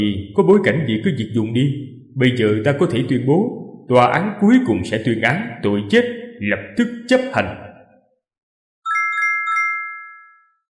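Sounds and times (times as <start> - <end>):
speech: 0.0 - 7.7
mobile phone ringtone with three chime notes: 8.8 - 10.7.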